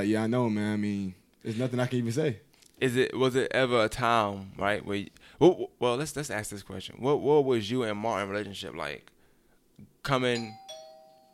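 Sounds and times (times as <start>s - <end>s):
speech: 0.0s - 9.1s, 9.8s - 10.7s
doorbell chiming ding-dong: 10.4s - 11.3s.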